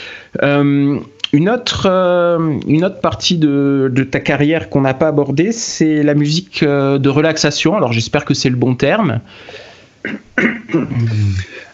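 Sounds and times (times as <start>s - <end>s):
speech: 0.3s - 11.6s
person coughing: 10.0s - 11.7s
throat-clearing hum: 10.0s - 11.7s.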